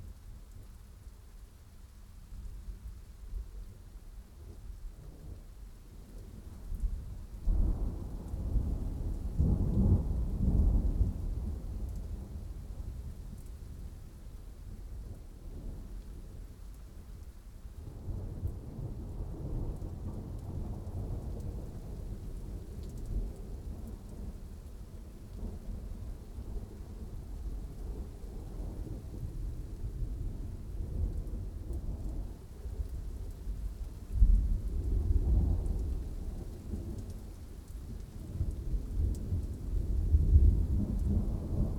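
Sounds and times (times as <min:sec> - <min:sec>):
dry extended thunderstorm: 0:06.1 - 0:14.0, 0:17.8 - 0:41.7.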